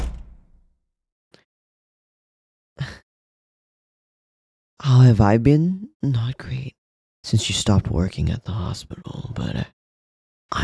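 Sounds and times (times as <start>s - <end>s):
knock: 0.0s - 0.5s
door swinging shut with a heavy thud: 0.0s - 0.6s
speech: 4.8s - 9.8s, 10.5s - 10.6s.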